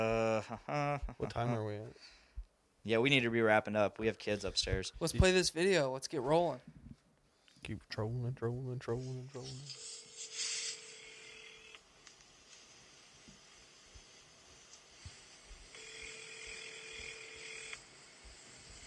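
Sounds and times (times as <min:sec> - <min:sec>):
speech: 0:00.0 - 0:02.2, 0:02.8 - 0:06.8, 0:07.6 - 0:10.0
hiss: 0:00.0 - 0:18.8
telephone ringing with electronic trill: 0:09.8 - 0:11.8, 0:15.7 - 0:17.8.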